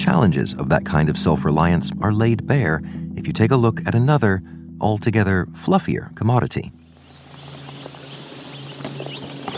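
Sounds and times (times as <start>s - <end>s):
speech: 0.1s - 6.8s
many chickens clucking and chirping on an industrial poultry farm: 7.0s - 9.5s.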